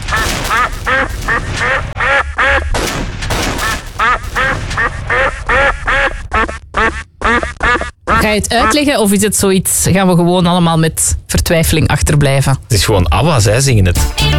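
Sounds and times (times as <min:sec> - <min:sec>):
duck quacking loudly and rapidly: 0:00.0 - 0:02.8, 0:03.6 - 0:08.9
speech: 0:08.3 - 0:14.3.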